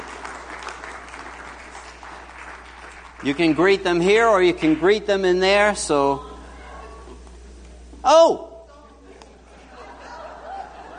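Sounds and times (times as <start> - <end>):
audience applause: 0.0 - 5.0
speech: 3.2 - 6.3, 8.1 - 8.5
laughter: 9.0 - 10.9.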